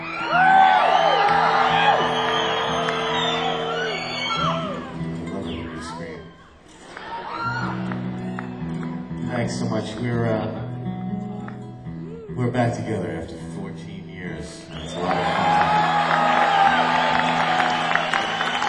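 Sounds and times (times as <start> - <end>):
large concert crowd whooping cheering and screaming at a live show: 0.0 - 9.2, 14.7 - 18.6
speech: 9.8 - 10.6, 12.4 - 13.4.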